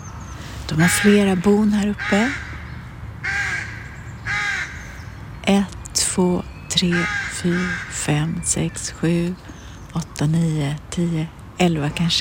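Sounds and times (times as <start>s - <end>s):
speech: 0.7s - 2.5s, 5.5s - 12.2s
several rooks cawing in treetops: 0.7s - 5.1s, 6.9s - 8.1s.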